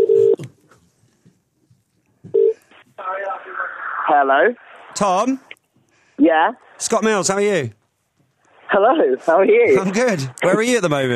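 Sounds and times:
telephone ringing tone: 0.0 - 0.4, 2.4 - 2.6
speech: 4.1 - 5.5, 6.2 - 7.8, 8.7 - 11.1.

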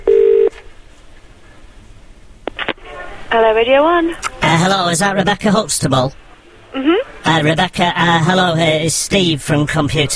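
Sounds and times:
loud steady telephone tone: 0.0 - 0.6
faint hiss: 0.0 - 10.1
speech: 3.3 - 10.1.

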